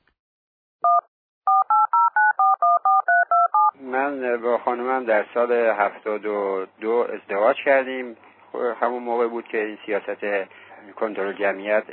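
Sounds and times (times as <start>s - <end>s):
touch-tone telephone dialing tones: 0.8s - 3.7s
speech: 4.4s - 11.9s.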